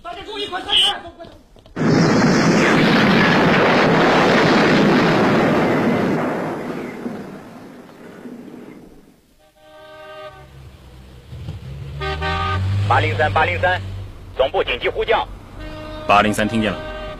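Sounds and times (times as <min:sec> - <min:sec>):
bomb explosion at a hotel near a fountain, radio drama effect: 0:01.8 - 0:09.2
horn-like honking tones: 0:09.4 - 0:14.0, 0:15.5 - 0:17.1
speech: 0:13.1 - 0:15.4, 0:16.1 - 0:16.9.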